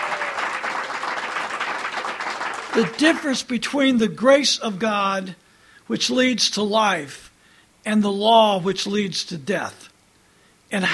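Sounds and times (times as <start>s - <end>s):
church congregation clapping enthusiastically: 0.0s - 3.4s
speech: 2.8s - 7.2s, 7.8s - 9.9s, 10.7s - 10.9s.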